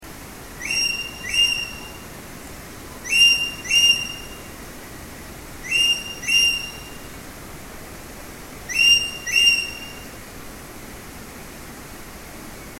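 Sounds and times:
ekek layongan bird chirping: 0:00.6 - 0:02.0, 0:03.0 - 0:04.4, 0:05.6 - 0:07.0, 0:08.7 - 0:10.0.

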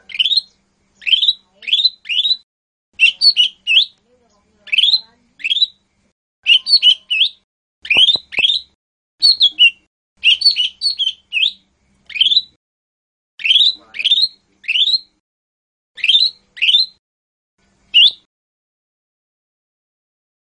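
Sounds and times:
lesser green leafbird singing: 0:00.0 - 0:02.4, 0:03.0 - 0:04.0, 0:04.6 - 0:12.6, 0:13.4 - 0:15.2, 0:16.0 - 0:17.0, 0:17.9 - 0:18.3.

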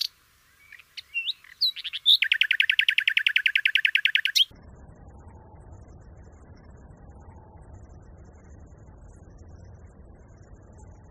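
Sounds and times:
common nightingale singing repeated chirping notes: 0:00.0 - 0:04.6.

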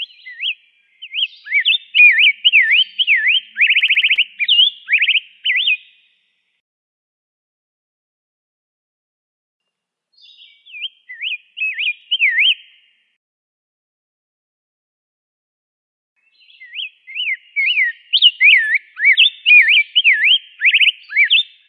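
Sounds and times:
Rose-breasted grosbeak song of warbled whistled phrases and rattling trill: 0:00.0 - 0:06.3, 0:10.2 - 0:13.0, 0:16.2 - 0:21.6.

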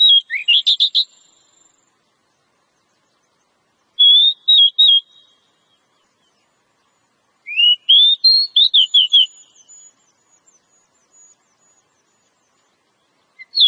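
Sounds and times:
Oriental magpie-robin whistled song: 0:00.0 - 0:01.8, 0:04.0 - 0:13.6.

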